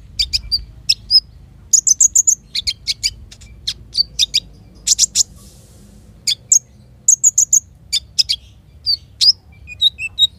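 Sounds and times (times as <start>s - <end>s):
Van Hasselt's sunbird uttering high sharp chirps: 0.0s - 10.3s.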